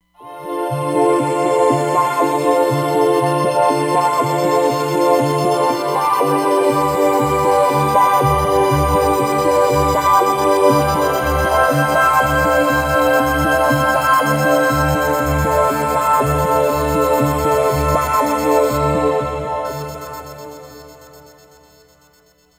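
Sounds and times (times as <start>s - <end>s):
filtered synthesizer pad on a Roland Fantom XR: 0.2s - 22.5s.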